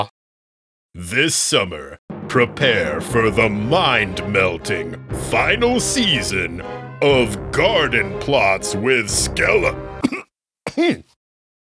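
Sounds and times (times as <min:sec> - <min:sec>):
speech: 0:01.0 - 0:11.1
person clearing throat: 0:10.0 - 0:11.2.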